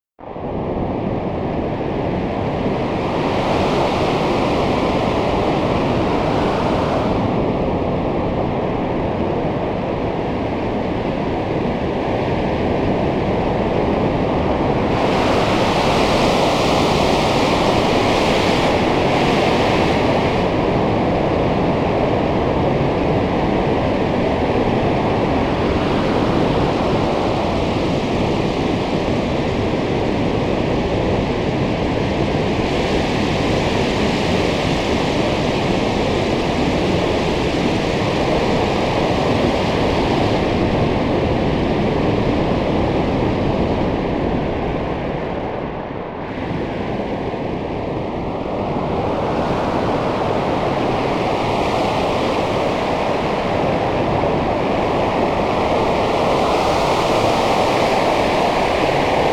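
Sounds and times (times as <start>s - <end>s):
wind storm: 0.2s - 59.3s.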